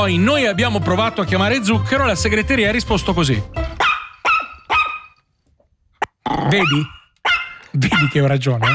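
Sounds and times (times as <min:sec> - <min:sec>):
speech: 0:00.0 - 0:03.6, 0:06.5 - 0:07.0, 0:07.7 - 0:08.7
small dog barking: 0:03.8 - 0:05.2, 0:06.5 - 0:08.7.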